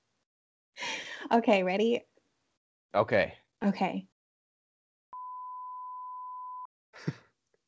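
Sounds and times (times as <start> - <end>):
speech: 1.3 - 2.1, 2.9 - 4.1
steady pure electronic censor beep: 5.2 - 6.7.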